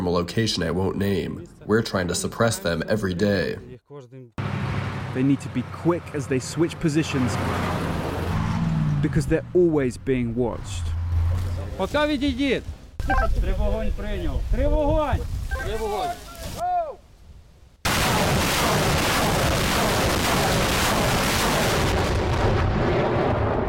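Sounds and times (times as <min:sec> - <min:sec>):
speech: 0:00.0 - 0:04.6, 0:05.2 - 0:07.9, 0:09.0 - 0:16.7
salvo of rockets being fired: 0:17.8 - 0:23.6.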